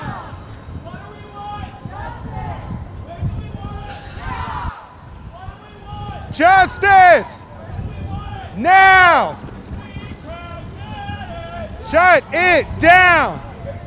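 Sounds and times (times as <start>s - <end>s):
city street noise: 0.0s - 13.8s
crowd chatter at a bike protest: 0.0s - 13.8s.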